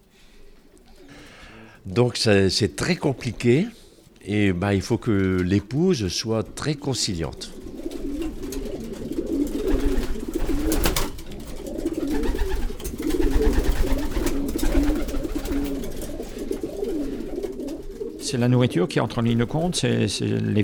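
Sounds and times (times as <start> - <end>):
flock of racing pigeons cooing: 0.0 - 1.8, 6.2 - 20.0
speech: 1.8 - 7.6, 18.3 - 20.6.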